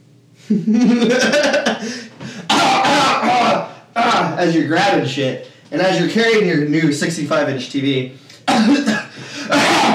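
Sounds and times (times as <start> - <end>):
speech: 0.5 - 9.0
person faking an exaggerated theatrical cough: 1.5 - 3.7, 8.4 - 9.9.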